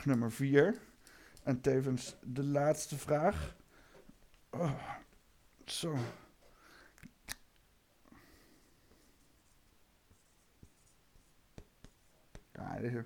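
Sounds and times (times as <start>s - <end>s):
speech: 0.0s - 3.6s, 4.5s - 5.0s, 5.7s - 6.2s, 12.6s - 13.0s
pen tapping on paper: 11.6s - 12.5s.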